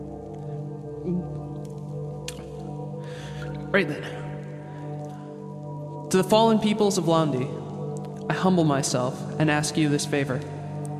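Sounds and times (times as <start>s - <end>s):
water dripping and splashing: 0.0s - 3.7s, 4.4s - 9.0s
speech: 1.0s - 1.4s, 3.7s - 4.2s, 6.1s - 7.6s, 8.4s - 10.6s.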